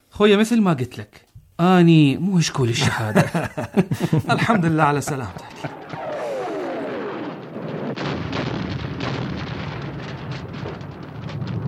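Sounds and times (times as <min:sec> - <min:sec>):
speech: 0:00.2 - 0:05.8
laughter: 0:02.8 - 0:06.6
explosions: 0:04.0 - 0:11.6
rapid bursts of gunfire: 0:05.5 - 0:10.8.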